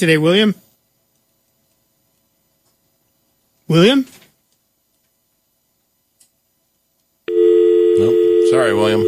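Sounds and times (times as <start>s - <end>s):
speech: 0.0s - 0.6s, 3.7s - 4.2s, 8.0s - 9.0s
telephone busy tone after failed call: 7.3s - 9.0s.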